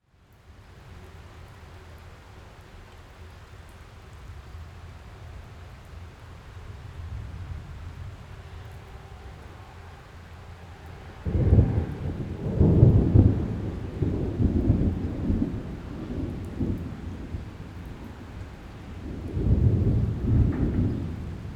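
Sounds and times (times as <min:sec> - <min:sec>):
medium storm ambience: 0:06.9 - 0:21.5.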